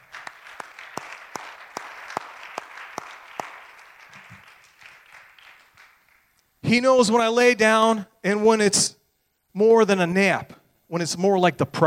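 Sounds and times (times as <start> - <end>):
crowd applauding in praise of God: 0.0 - 6.4
speech: 6.7 - 9.0, 9.6 - 11.8.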